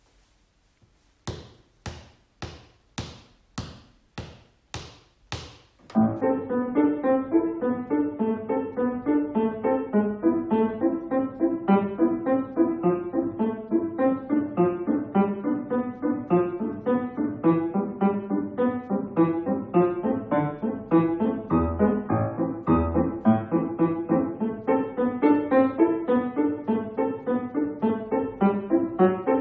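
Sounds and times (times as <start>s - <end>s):
Grade 3 piano duet at exam speed: 5.9s - 29.3s.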